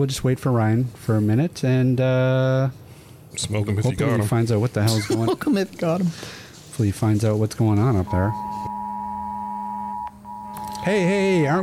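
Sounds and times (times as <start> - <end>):
speech: 0.0 - 2.8, 3.4 - 8.5, 10.8 - 11.6
phone emergency alert tone from the BC Emergency Alert System: 8.1 - 11.6.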